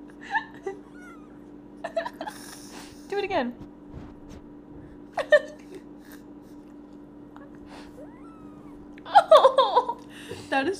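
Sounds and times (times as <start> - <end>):
room hum: 0.0 - 10.7
cat meowing: 0.8 - 1.5, 7.7 - 9.0
speech: 3.1 - 3.7
faint squeak: 7.8 - 8.8.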